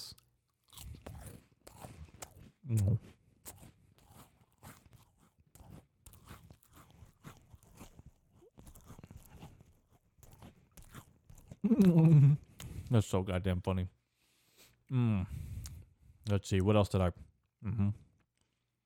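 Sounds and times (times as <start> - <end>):
cheese Ritz crackers being chewed: 0.0 - 13.0
speech: 2.7 - 3.2, 11.7 - 14.0, 14.9 - 15.5, 16.2 - 18.0.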